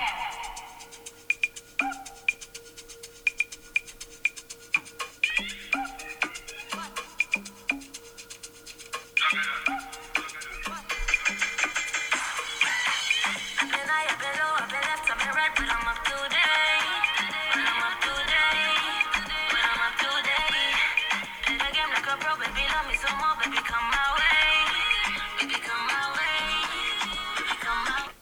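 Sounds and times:
afrobeats album track with plucky percussion and bright layered instrumentation: 0.0 - 28.1.

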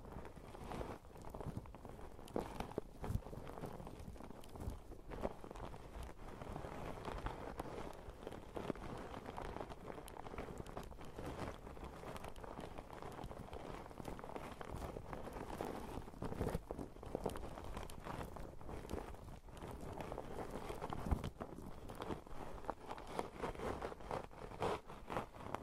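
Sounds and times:
sharp crinkle: 0.0 - 25.6
sponges rubbing, scratching and squishing against a microphone: 0.3 - 25.6.

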